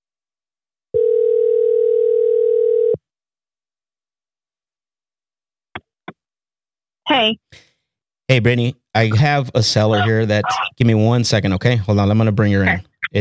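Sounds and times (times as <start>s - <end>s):
telephone dial tone while placing a call: 1.0s - 3.0s
speech: 7.1s - 7.7s, 8.3s - 13.1s.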